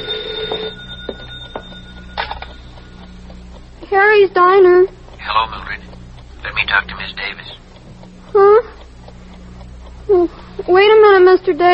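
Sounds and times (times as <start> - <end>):
telephone bell ringing: 0.0 - 3.2
speech: 3.9 - 5.9, 6.5 - 7.6, 8.3 - 8.7, 10.1 - 11.7.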